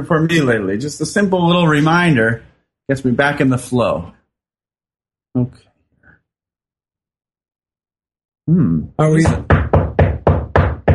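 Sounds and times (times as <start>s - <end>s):
speech: 0.0s - 4.2s, 5.3s - 5.7s, 8.5s - 9.7s
loud firm knocking on a door: 9.1s - 10.9s.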